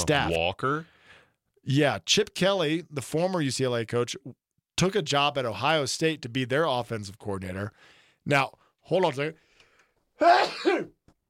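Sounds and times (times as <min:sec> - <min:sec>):
speech: 0:00.0 - 0:00.9, 0:01.6 - 0:09.4, 0:10.2 - 0:11.0
person sneezing into a microphone: 0:10.2 - 0:11.0.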